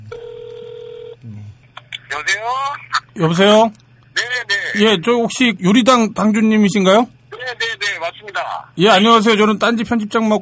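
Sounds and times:
telephone ringing tone while a call is connected: 0.1 - 1.2
speech: 2.2 - 7.6, 8.3 - 10.4.

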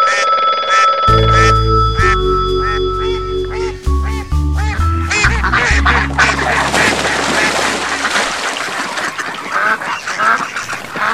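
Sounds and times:
phone ringtone: 0.0 - 6.0
ducks giving a dense chorus of nasal quacks in the countryside: 0.1 - 2.2, 3.5 - 11.1.

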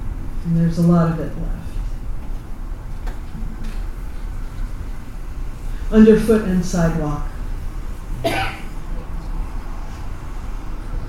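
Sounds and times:
steady low rumble: 0.0 - 11.0
speech: 0.4 - 1.8, 5.9 - 7.3, 8.2 - 8.6
person coughing: 8.2 - 8.7.

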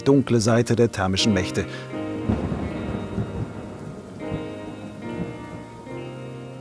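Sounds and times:
speech: 0.0 - 2.4
steady rain: 0.1 - 6.6
deep rolling thunder: 2.0 - 6.6.

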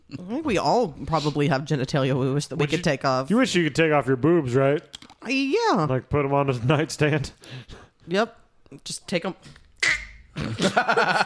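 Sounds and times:
speech: 0.1 - 9.6, 10.4 - 11.2
person vocally imitating a duck quack: 9.8 - 10.2
laughter: 10.4 - 11.2.

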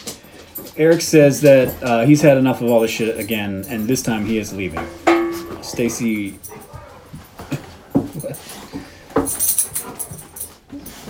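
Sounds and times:
speech: 0.8 - 5.0, 5.6 - 6.7
dog whimpering and yelping: 6.4 - 7.7.

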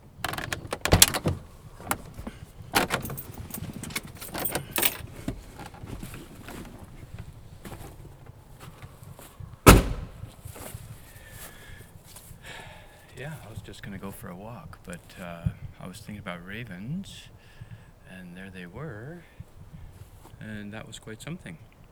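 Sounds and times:
truck door thunk: 0.0 - 9.0, 9.6 - 10.4
keys jingling: 0.1 - 9.0
clothing shuffling: 0.1 - 12.4
clicks and knocks: 0.2 - 6.9
speech: 13.7 - 17.6, 18.2 - 19.4, 20.4 - 21.7.

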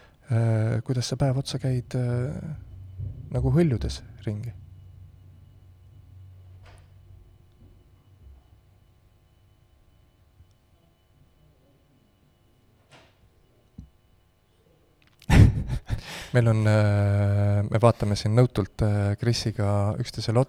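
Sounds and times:
steady low room hum: 0.0 - 20.4
speech: 0.3 - 2.7, 3.3 - 4.6, 16.4 - 20.4
bumps of someone fumbling behind a door: 1.2 - 8.5
laughter: 15.2 - 16.3.

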